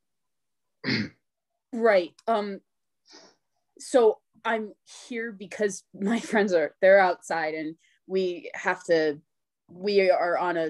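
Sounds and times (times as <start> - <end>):
woman clearing her throat: 0.8 - 1.2
speech: 0.9 - 10.6.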